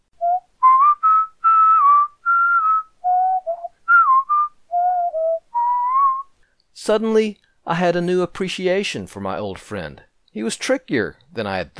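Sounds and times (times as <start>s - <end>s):
person whistling a slow chorale melody: 0.2s - 6.3s
speech: 6.9s - 11.7s.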